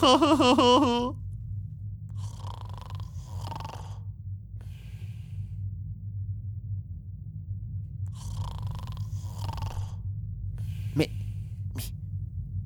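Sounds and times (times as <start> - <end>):
laughter: 0.0 - 1.1
speech: 0.0 - 1.2, 11.0 - 11.2
low steady droning hum: 0.0 - 12.6.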